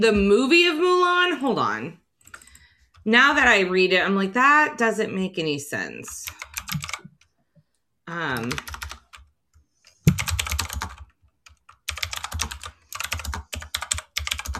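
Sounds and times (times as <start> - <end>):
speech: 0.0 - 2.0, 3.0 - 6.8, 8.1 - 8.8
clacky mechanical keyboard typing: 6.2 - 7.3, 8.1 - 9.3, 10.0 - 14.5.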